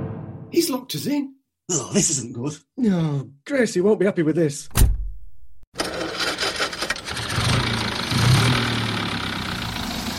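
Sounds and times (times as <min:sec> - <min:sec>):
speech: 0:00.5 - 0:04.8
car engine starting and revving as the car drives off: 0:05.8 - 0:10.1.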